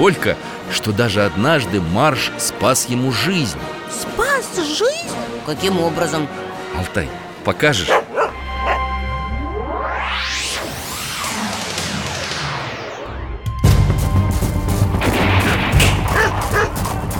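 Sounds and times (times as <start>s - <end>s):
speech: 0.0s - 8.0s
sweeping whooshes: 8.6s - 13.5s
dense gunfire from several directions: 14.2s - 17.1s.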